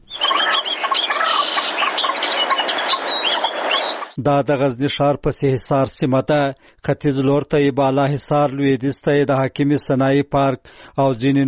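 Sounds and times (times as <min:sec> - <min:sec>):
birds chirping in a park in Sehisar, Ghazni city: 0:00.0 - 0:04.2
speech: 0:04.2 - 0:11.4.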